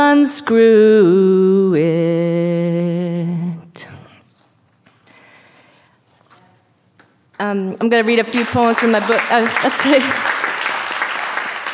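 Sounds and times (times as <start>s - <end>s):
speech: 0.1s - 2.6s, 7.4s - 10.4s
crowd audience applause: 8.0s - 11.7s.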